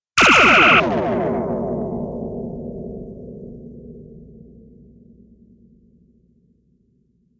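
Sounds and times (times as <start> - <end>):
phaser ricochet: 0.2 - 1.8.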